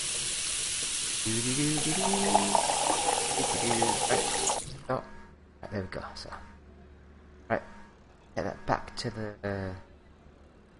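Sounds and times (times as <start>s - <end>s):
water running from tap into pan: 0.0s - 4.7s
speech: 1.2s - 6.5s, 7.5s - 7.7s, 8.4s - 9.9s
brief voiced tonal sound: 1.3s - 4.2s.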